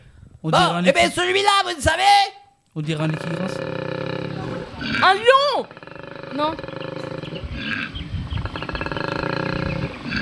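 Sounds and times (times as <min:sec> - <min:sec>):
speech: 0:00.4 - 0:03.7, 0:04.9 - 0:07.8
koala bellowing: 0:03.0 - 0:10.2.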